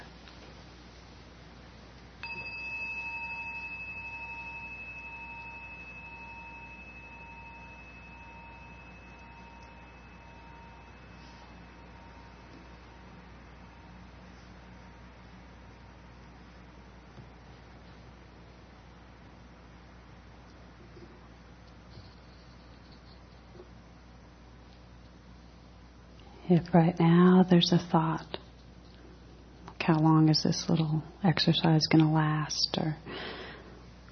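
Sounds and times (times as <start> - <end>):
quiet hissy background: 0.0 - 34.0
meditation bell struck and ringing: 2.2 - 14.1
speech: 26.5 - 28.4, 29.9 - 33.3.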